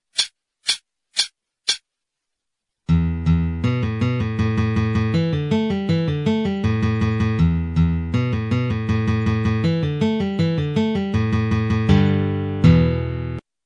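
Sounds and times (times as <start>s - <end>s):
pull-off notes at 160: 2.9s - 13.4s.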